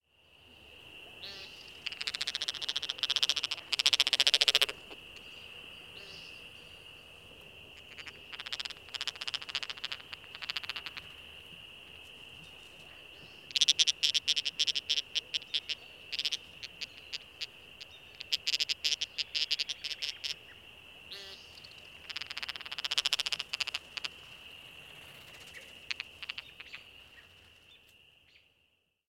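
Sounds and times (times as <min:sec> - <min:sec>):
American woodcock aggressive cackles: 0:01.2 - 0:05.4, 0:07.8 - 0:11.2, 0:13.4 - 0:24.2, 0:25.6 - 0:27.3.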